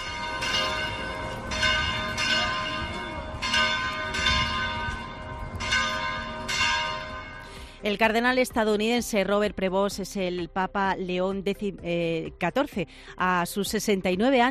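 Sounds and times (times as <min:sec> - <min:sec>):
large cathedral church bells pealing in celebration: 0:00.0 - 0:07.6
speech: 0:07.8 - 0:14.4.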